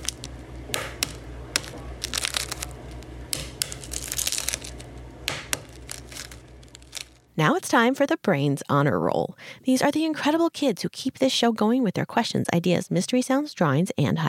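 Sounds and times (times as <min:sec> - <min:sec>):
hard-boiled egg shell cracked and peeled: 0:00.0 - 0:07.3
steady low hum: 0:00.0 - 0:07.9
speech: 0:07.4 - 0:14.2.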